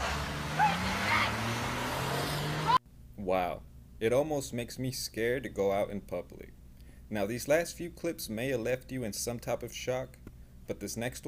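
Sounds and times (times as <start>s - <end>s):
car engine roaring: 0.0s - 2.8s
road noise: 0.0s - 2.8s
speech: 3.3s - 11.2s.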